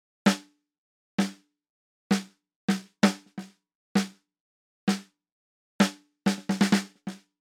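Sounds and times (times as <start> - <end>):
snare drum: 0.3 - 0.5, 1.2 - 1.4, 2.1 - 4.2, 4.9 - 5.1, 5.8 - 7.2.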